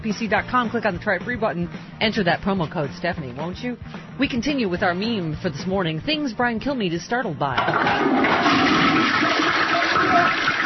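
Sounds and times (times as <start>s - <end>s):
speech: 0.0s - 9.4s
toilet flushing: 7.6s - 10.6s.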